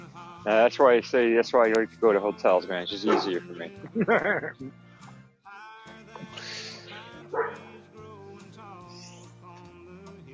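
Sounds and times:
speech: 0:00.4 - 0:04.9
laughter: 0:02.1 - 0:04.8, 0:06.2 - 0:07.2
dog barking: 0:02.9 - 0:03.5, 0:06.9 - 0:07.8
dog whimpering: 0:06.9 - 0:07.8.

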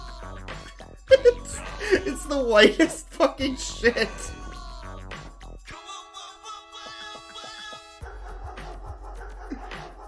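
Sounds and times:
steady musical beat with sustained tonal backing: 0:00.0 - 0:10.0
laughter: 0:01.1 - 0:03.0, 0:08.5 - 0:10.0
speech: 0:02.3 - 0:04.4
chopped and sequenced dog barks: 0:08.0 - 0:10.0.

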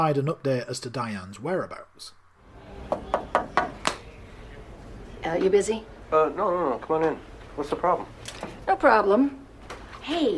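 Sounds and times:
speech: 0:00.0 - 0:02.2, 0:02.9 - 0:03.4, 0:05.2 - 0:09.4, 0:10.0 - 0:10.3
knocking on a wooden office door: 0:02.9 - 0:04.0.

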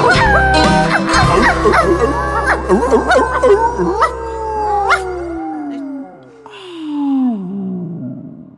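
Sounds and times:
dog howling: 0:00.0 - 0:06.5.

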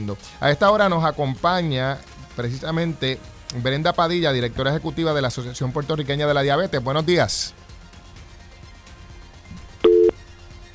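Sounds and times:
speech: 0:00.0 - 0:07.6
telephone tone after a phone call drops: 0:09.8 - 0:10.2.

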